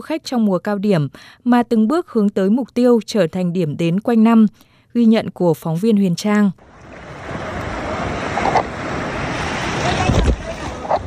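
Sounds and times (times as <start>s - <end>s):
speech: 0.0s - 7.1s
ocean surf at a beach on a summer day: 6.6s - 11.0s.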